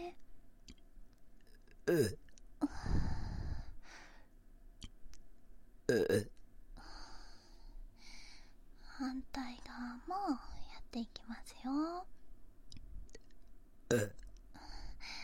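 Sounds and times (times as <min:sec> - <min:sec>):
burping close to the ear: 0:01.4 - 0:02.3, 0:05.9 - 0:06.4, 0:13.9 - 0:14.3
speech: 0:01.9 - 0:02.2, 0:09.1 - 0:12.2, 0:13.9 - 0:14.2
breathy exhales: 0:02.6 - 0:04.2.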